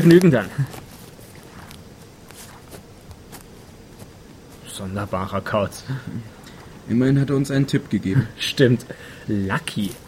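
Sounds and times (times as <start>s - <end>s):
speech: 0.0s - 0.7s, 4.8s - 10.0s
footsteps of a man walking away on a morning stroll: 0.0s - 5.7s
steady noise: 0.0s - 10.0s.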